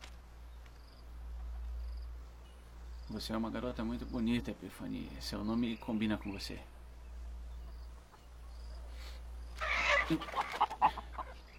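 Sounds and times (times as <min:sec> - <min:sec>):
steady low hum: 0:00.0 - 0:09.6
speech: 0:03.1 - 0:06.7, 0:10.1 - 0:10.4
chickens clucking: 0:07.6 - 0:11.5.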